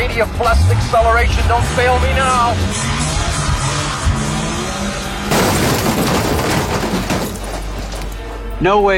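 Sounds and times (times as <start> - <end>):
car engine roaring: 0.0 - 8.6
speech: 0.2 - 3.0, 8.6 - 8.9
car crash with crunching, scraping impact: 5.3 - 8.2.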